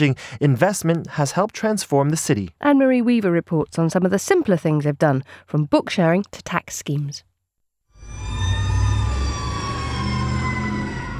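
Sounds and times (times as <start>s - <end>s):
speech: 0.0s - 7.3s
police sirens wailing in the Colonia Juarez neighborhood of Mexico City: 8.0s - 11.1s.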